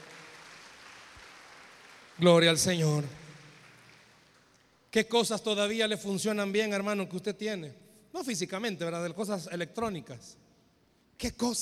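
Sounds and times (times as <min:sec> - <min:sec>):
audience applauding: 0:00.0 - 0:04.7
speech: 0:02.2 - 0:03.2, 0:04.9 - 0:10.4, 0:11.2 - 0:11.6.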